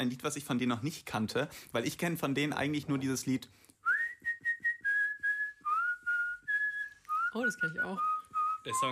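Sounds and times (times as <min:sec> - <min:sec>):
speech: 0:00.0 - 0:03.7, 0:07.4 - 0:08.9
person whistling a song melody: 0:03.8 - 0:08.9.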